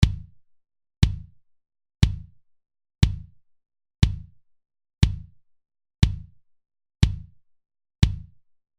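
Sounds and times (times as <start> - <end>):
kick drum: 0.0 - 0.4, 1.0 - 1.4, 2.0 - 2.4, 3.0 - 3.4, 4.0 - 4.4, 5.0 - 5.4, 6.0 - 6.4, 7.0 - 7.4, 8.0 - 8.4.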